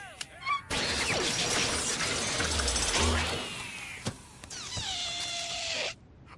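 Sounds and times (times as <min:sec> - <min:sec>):
squeaky rising rubbery squeals: 0:00.5 - 0:06.0
robotic balloon animal maker whirring and clanking: 0:00.7 - 0:04.3.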